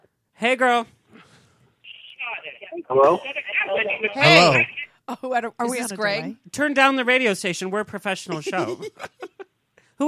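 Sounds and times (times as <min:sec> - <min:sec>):
speech: 0:00.4 - 0:01.0, 0:02.7 - 0:09.3
burst of voice over phone line: 0:01.9 - 0:04.9, 0:05.6 - 0:06.3, 0:08.4 - 0:08.8
laughter: 0:08.3 - 0:09.5.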